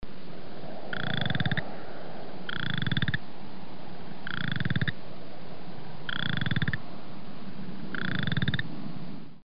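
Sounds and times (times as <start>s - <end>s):
Pseudacris maculata boreal chorus frog calling: 0.9s - 1.7s, 2.5s - 3.2s, 4.2s - 5.0s, 6.1s - 6.8s, 7.9s - 8.7s.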